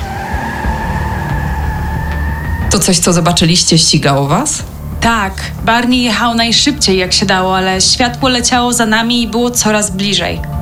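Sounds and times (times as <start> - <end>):
car tires squealing at full-speed takeoff: 0.0 - 5.1
loud rumbling car engine: 0.0 - 8.6
speech: 2.8 - 10.5.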